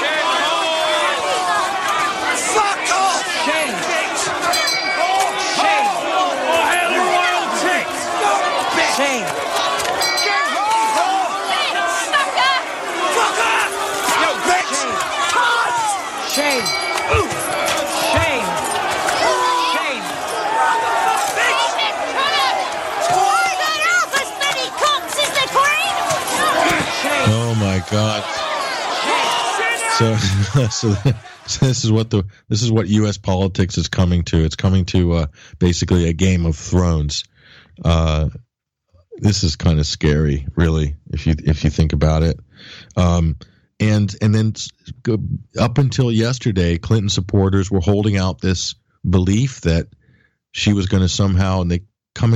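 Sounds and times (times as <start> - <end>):
large crowd chanting in unison at the Wisconsin state government building: 0.0 - 27.4, 28.2 - 31.5
scattered cries in a crowd: 0.0 - 31.5
speech: 27.8 - 28.4, 30.0 - 38.5, 39.2 - 50.0, 50.6 - 52.3
laughter: 29.8 - 32.2.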